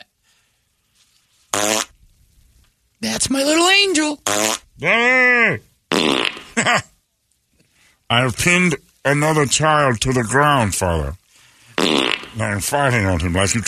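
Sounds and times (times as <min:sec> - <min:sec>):
loud brassy fart sounds: 0:01.5 - 0:02.0, 0:04.2 - 0:04.9, 0:05.9 - 0:06.7, 0:11.8 - 0:12.6
speech: 0:03.2 - 0:05.7, 0:08.1 - 0:11.2, 0:11.8 - 0:13.6.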